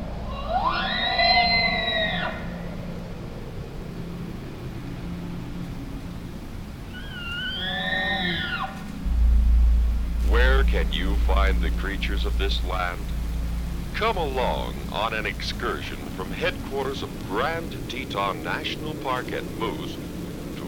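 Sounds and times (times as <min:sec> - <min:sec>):
steady low outdoor rumble: 0:00.0 - 0:20.6
bull elk bugling: 0:06.8 - 0:20.6
speech: 0:11.2 - 0:13.2, 0:14.0 - 0:20.0.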